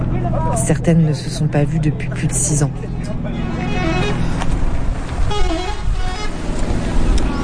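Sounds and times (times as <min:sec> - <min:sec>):
bus engine rumbling in Aleppo Syria: 0:00.0 - 0:07.4
crowd of voices murmuring: 0:00.0 - 0:07.4
steady outdoor traffic noise: 0:00.0 - 0:07.4
speech: 0:00.6 - 0:03.6
car horns tooting: 0:03.3 - 0:06.6.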